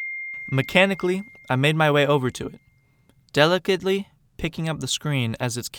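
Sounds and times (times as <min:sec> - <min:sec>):
electronic phone notification pings: 0:00.1 - 0:01.9
speech: 0:00.5 - 0:02.6, 0:03.3 - 0:05.7.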